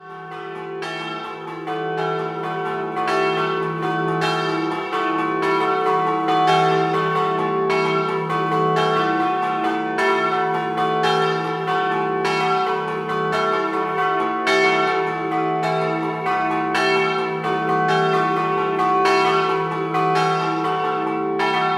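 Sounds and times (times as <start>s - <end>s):
bells ringing: 0.2s - 21.7s.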